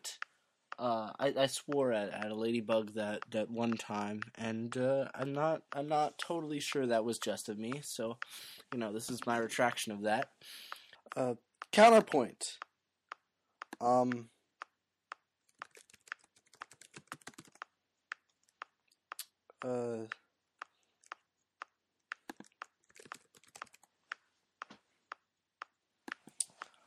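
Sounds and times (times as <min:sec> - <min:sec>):
speech: 0:00.8 - 0:12.7, 0:13.8 - 0:14.3, 0:19.6 - 0:20.2
typing on a computer keyboard: 0:15.5 - 0:17.7, 0:22.1 - 0:24.2.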